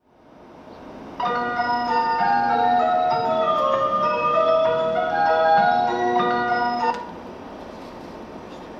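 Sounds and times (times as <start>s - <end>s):
train station melody: 1.2s - 7.1s.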